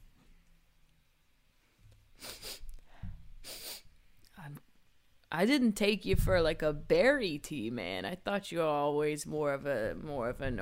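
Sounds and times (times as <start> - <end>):
faint low noise: 0.0 - 10.6
person sniffing a cup of tea: 2.2 - 3.9
speech: 5.3 - 10.6.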